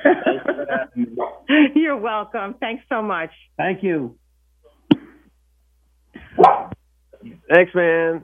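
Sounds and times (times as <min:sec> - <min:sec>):
laughter: 0:00.0 - 0:01.2
speech: 0:01.9 - 0:04.2, 0:06.4 - 0:08.2
dog barking: 0:06.4 - 0:06.8.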